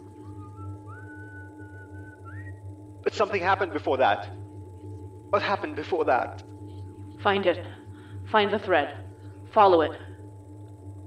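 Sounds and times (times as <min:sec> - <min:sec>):
sustained wavering whistled tone gliding upward: 0:00.0 - 0:07.9
low constant hum: 0:00.0 - 0:11.0
speech: 0:03.1 - 0:04.4, 0:05.3 - 0:06.5, 0:07.2 - 0:10.0.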